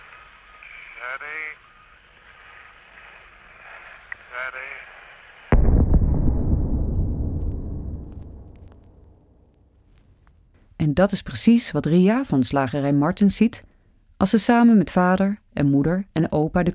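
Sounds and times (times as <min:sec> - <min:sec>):
speech: 0:01.0 - 0:01.7, 0:04.3 - 0:05.0, 0:10.8 - 0:16.7
bomb exploding and striking a church tower during an air raid: 0:05.5 - 0:10.5.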